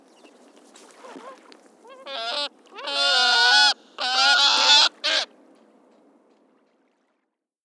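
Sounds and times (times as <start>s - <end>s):
Audouin's gull giving harsh nasal braying calls: 1.0s - 5.3s.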